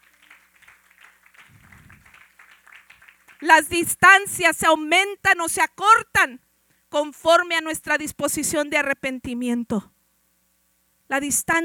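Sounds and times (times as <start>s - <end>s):
congregation applauding with many hands clapping: 0.0s - 3.6s
speech: 3.4s - 9.9s, 11.1s - 11.6s.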